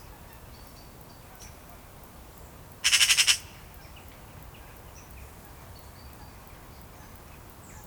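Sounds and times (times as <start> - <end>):
Eurasian magpie Pica pica rattling chatter: 2.8 - 3.5.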